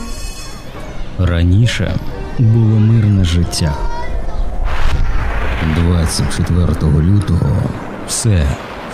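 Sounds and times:
speech: 0:01.2 - 0:04.1, 0:05.6 - 0:08.7
loud gunfire with heavy rumbling booms: 0:04.7 - 0:08.9.

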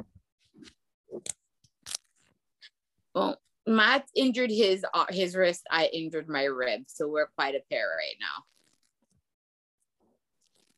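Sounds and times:
Velcro strap being tightened: 0:01.8 - 0:02.2, 0:08.4 - 0:09.0, 0:10.4 - 0:10.7
speech: 0:03.2 - 0:08.5.

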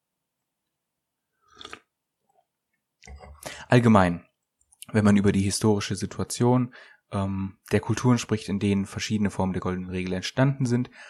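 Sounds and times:
swallowing: 0:01.5 - 0:01.9
speech: 0:03.7 - 0:04.3, 0:04.9 - 0:11.0.

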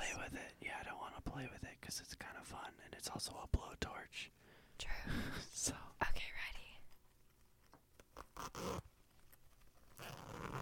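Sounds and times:
speech: 0:00.2 - 0:06.5, 0:08.4 - 0:08.9
backpack zipper being pulled: 0:08.2 - 0:08.9, 0:09.9 - 0:10.5.

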